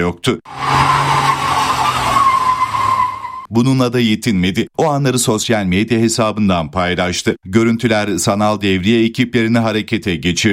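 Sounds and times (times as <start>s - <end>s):
speech: 0.0s - 1.2s, 3.5s - 10.5s
tires screeching as a luxury car drifts on a street at night in Istanbul: 0.5s - 3.5s.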